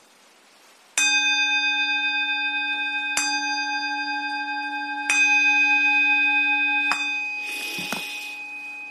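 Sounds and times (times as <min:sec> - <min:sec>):
Buddhist temple bell struck: 0:01.0 - 0:08.8
rustling noise: 0:06.9 - 0:08.8.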